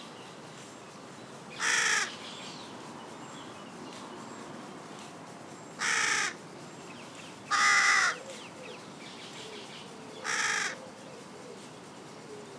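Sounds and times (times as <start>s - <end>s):
carrion crow Corvus corone giving harsh hoarse caws: 1.6s - 2.1s, 5.8s - 6.4s, 7.5s - 8.2s, 10.2s - 10.8s.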